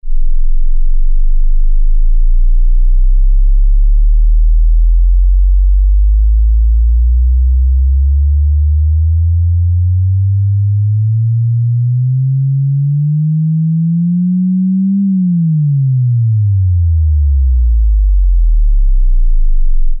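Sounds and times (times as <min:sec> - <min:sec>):
headphone bass shaker vibrating: 0:00.0 - 0:19.9.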